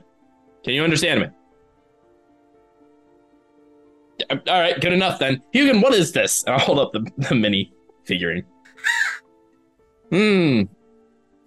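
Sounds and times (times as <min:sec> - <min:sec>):
speech: 0:00.6 - 0:01.4, 0:04.2 - 0:09.1, 0:10.1 - 0:10.8
human voice imitating crow caws: 0:08.7 - 0:09.2.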